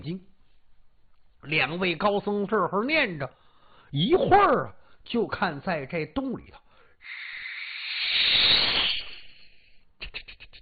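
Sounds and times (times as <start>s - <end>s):
speech: 0.0s - 0.3s, 1.4s - 7.3s
snake hissing coming out of a cave: 7.0s - 10.6s.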